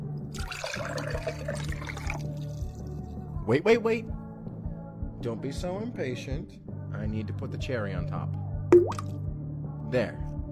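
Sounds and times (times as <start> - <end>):
cocktail poured slowly into a glass over grenadine: 0.3 - 3.0
speech: 3.5 - 4.2, 5.2 - 9.1, 9.9 - 10.3.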